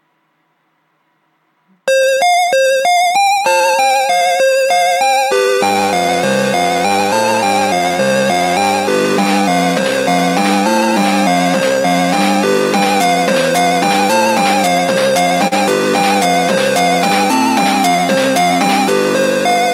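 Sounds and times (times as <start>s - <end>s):
self-made tracker music with beeping synthesized tones: 1.9s - 19.7s.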